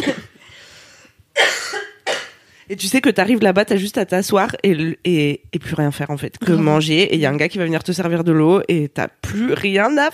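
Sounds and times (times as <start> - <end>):
person coughing: 0.0 - 0.4, 1.4 - 2.4
speech: 2.7 - 10.1.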